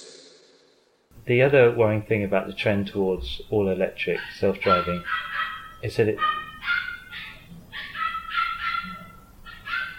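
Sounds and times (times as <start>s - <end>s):
faint noise: 1.1s - 9.9s
speech: 1.2s - 6.4s
dog barking: 4.2s - 9.9s.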